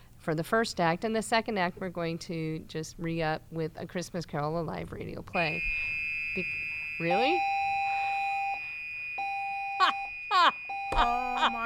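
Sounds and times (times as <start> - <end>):
speech: 0.2 - 7.6
fire alarm electronic tone: 5.4 - 11.6.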